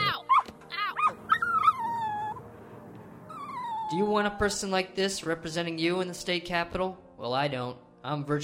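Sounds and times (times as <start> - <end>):
puppy yelping after being kicked in the ribs: 0.1 - 2.4, 3.3 - 4.0
puppy whining with wavering falling pitch: 0.2 - 2.4, 3.2 - 4.4
speech: 3.9 - 8.4.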